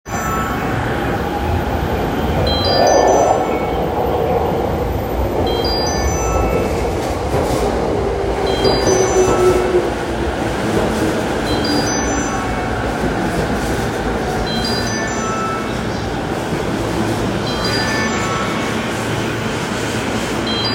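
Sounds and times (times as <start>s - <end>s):
train approaching Ichigaya station on the JR Chuo-Sobu Line: 0.1s - 20.7s.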